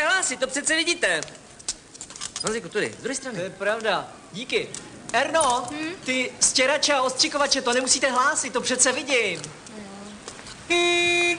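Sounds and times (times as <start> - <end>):
speech: 0.3 - 1.5, 2.4 - 9.8, 10.7 - 11.3
loud brassy car horn blast: 10.7 - 11.3.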